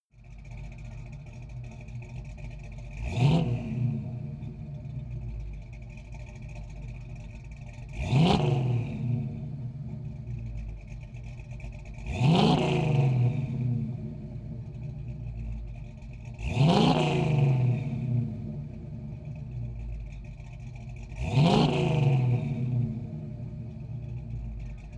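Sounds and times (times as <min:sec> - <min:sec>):
Camaro car engine revving through exhaust: 0:00.2 - 0:24.9.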